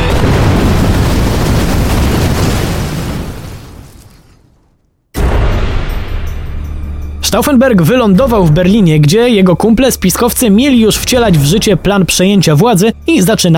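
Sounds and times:
dense burst of noise: 0:00.1 - 0:03.9
loud bomb explosion: 0:00.1 - 0:04.5, 0:05.1 - 0:06.9
speech: 0:07.3 - 0:13.5.

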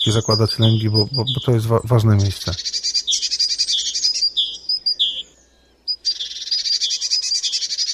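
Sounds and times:
speech: 0:00.0 - 0:02.9
great tit singing: 0:00.0 - 0:07.9.

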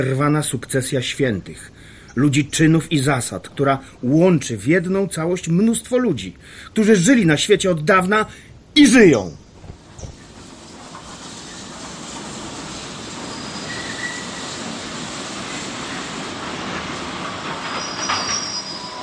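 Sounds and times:
train rumbling while braking: 0:00.0 - 0:07.9, 0:09.5 - 0:19.0
speech: 0:00.0 - 0:09.4
high-pitched train wheel squeals from braking: 0:09.5 - 0:19.0.

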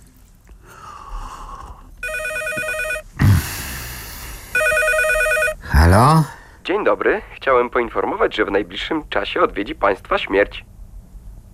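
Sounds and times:
telephone ringing with buzzing bell tones: 0:02.0 - 0:03.1, 0:04.6 - 0:05.7
speech: 0:06.2 - 0:10.7.

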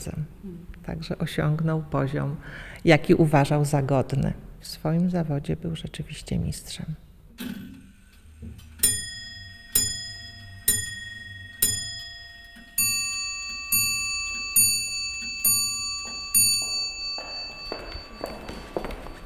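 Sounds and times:
speech: 0:00.0 - 0:07.6
clock striking with sharp ringing metallic strikes: 0:08.6 - 0:19.2
clock ticking: 0:08.8 - 0:16.9.

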